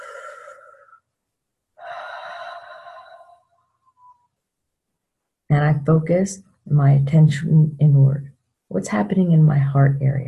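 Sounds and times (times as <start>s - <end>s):
long deep human breath: 0.0s - 1.0s, 1.8s - 3.6s
speech: 5.5s - 10.2s.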